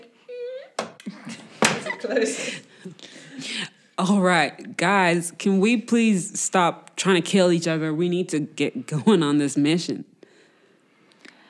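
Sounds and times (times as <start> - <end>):
people chuckling: 0.0 - 3.5
hard knock-like impact: 1.6 - 1.9
door swinging shut: 1.6 - 2.0
speech: 2.0 - 10.1.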